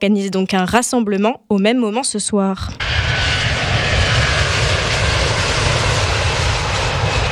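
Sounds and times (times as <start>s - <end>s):
speech: 0.0s - 3.5s
jet airplane roaring overhead at Roissy airport France: 2.6s - 7.3s.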